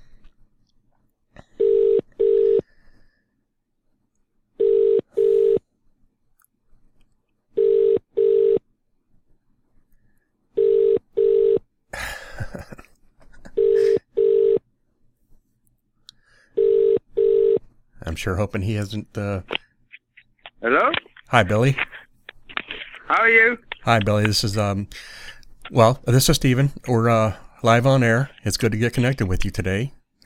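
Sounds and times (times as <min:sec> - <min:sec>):
ringback tone of an international call to a cell phone from Ireland: 0:01.6 - 0:02.6, 0:04.6 - 0:05.6, 0:07.6 - 0:08.6, 0:10.6 - 0:11.6, 0:13.6 - 0:14.6, 0:16.6 - 0:17.6
speech: 0:18.2 - 0:19.6, 0:20.6 - 0:21.9, 0:23.1 - 0:30.2.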